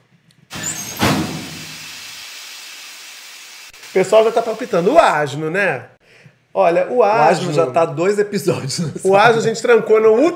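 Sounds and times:
sauna door shutting with a thud: 0:00.5 - 0:01.8
sauna steam hissing: 0:00.5 - 0:05.2
speech: 0:03.9 - 0:06.0, 0:06.6 - 0:10.3.

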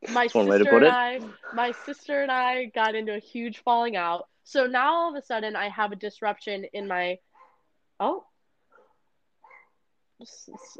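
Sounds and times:
speech: 0:00.2 - 0:07.3, 0:08.0 - 0:08.3, 0:10.2 - 0:10.7
faint dog barking: 0:07.3 - 0:07.7, 0:08.7 - 0:09.8, 0:10.4 - 0:10.7.

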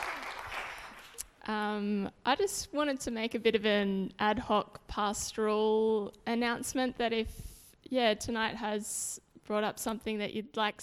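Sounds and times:
audience applauding: 0:00.0 - 0:01.2
speech: 0:01.5 - 0:10.8.

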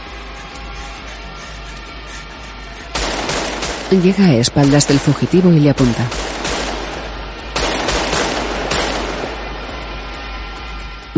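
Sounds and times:
gunfire in a street shootout: 0:02.9 - 0:10.2
speech: 0:03.9 - 0:06.3.

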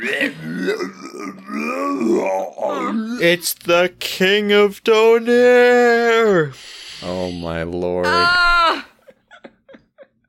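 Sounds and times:
speech: 0:00.0 - 0:02.6, 0:03.2 - 0:08.9
voice imitating a monster's mighty gravelly belch: 0:00.0 - 0:03.4.

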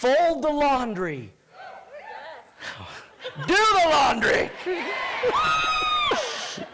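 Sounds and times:
speech: 0:00.0 - 0:01.4, 0:02.6 - 0:06.2
laughter: 0:02.8 - 0:06.7
men in a live audience booing: 0:04.6 - 0:06.5.

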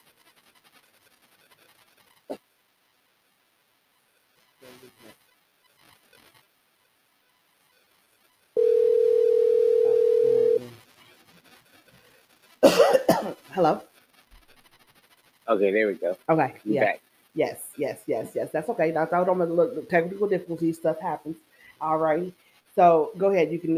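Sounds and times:
telephone ringing with steady electronic tone during incoming call: 0:08.6 - 0:10.6
speech: 0:13.6 - 0:13.9, 0:15.5 - 0:23.7.

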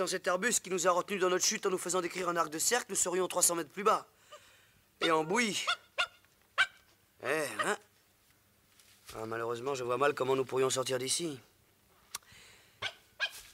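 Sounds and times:
speech: 0:00.0 - 0:04.2, 0:05.0 - 0:05.8, 0:07.2 - 0:07.8, 0:09.1 - 0:11.5
faint hiss: 0:00.0 - 0:13.5
dog barking: 0:05.0 - 0:06.8, 0:07.6 - 0:07.8, 0:12.8 - 0:13.5.

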